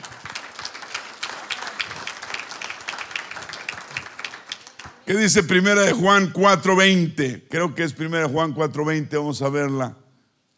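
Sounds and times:
crowd of people applauding: 0:00.0 - 0:05.7
speech: 0:05.1 - 0:10.0.

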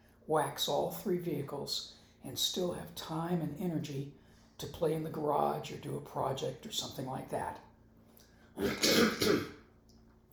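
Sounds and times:
speech: 0:00.3 - 0:07.7, 0:08.6 - 0:09.6
person clearing throat close to the mic: 0:08.6 - 0:09.6.

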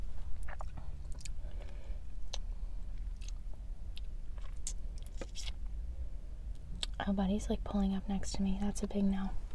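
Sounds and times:
crunchy chewing and biting of food inside a car: 0:00.2 - 0:05.6
speech: 0:07.1 - 0:09.4.

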